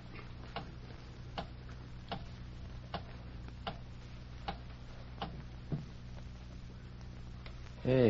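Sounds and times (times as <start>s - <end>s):
low steady hum: 0.0s - 8.0s
clock ticking: 1.3s - 2.3s, 2.9s - 3.8s, 4.4s - 5.4s
speech: 7.9s - 8.0s.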